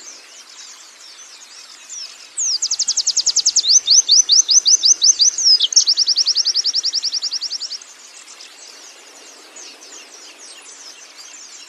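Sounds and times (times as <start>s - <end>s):
canary singing: 2.4s - 7.8s.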